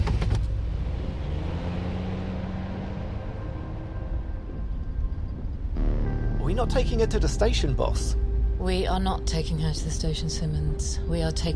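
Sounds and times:
police car engine rumbling as it pulls away: 0.0s - 11.5s
faint tonal whine: 3.9s - 11.5s
speech: 6.6s - 11.5s.

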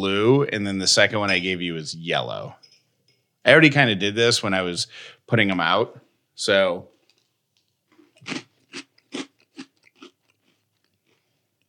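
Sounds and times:
speech: 0.0s - 2.7s, 3.4s - 6.9s, 8.2s - 8.5s
crunchy fruit-flavoured ring cereal being chewed: 6.9s - 11.6s.

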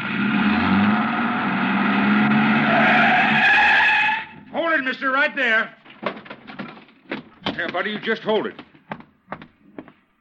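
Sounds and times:
truck engine roaring: 0.0s - 4.3s
truck tires skidding and squealing: 0.0s - 4.5s
speech: 5.2s - 5.8s, 7.6s - 8.7s.

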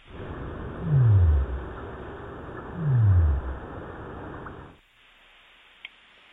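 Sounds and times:
deep downsweeping sei whale calls: 0.0s - 4.7s
steady hiss of ocean noise: 0.0s - 5.8s.

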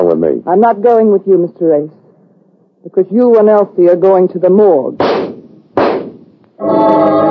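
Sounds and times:
speech: 0.1s - 2.0s, 2.8s - 5.2s, 6.6s - 7.2s
handgun gunshot: 5.0s - 6.3s.

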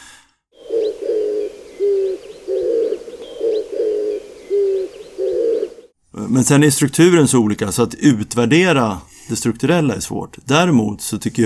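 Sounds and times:
dove giving a low hoarse cooing call: 0.6s - 5.9s
speech: 6.3s - 11.4s.

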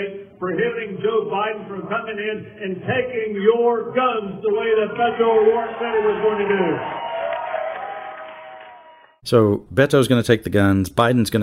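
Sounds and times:
speech: 0.0s - 7.0s, 9.2s - 11.4s
rally crowd cheering: 4.4s - 9.2s.

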